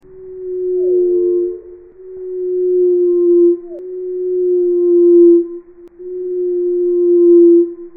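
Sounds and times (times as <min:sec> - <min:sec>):
nightingale singing: 0:00.0 - 0:07.9.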